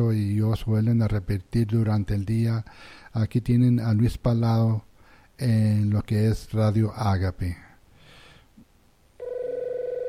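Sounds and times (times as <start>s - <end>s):
speech: 0.0s - 7.7s
telephone ringing with a steady electronic trill: 9.2s - 10.0s.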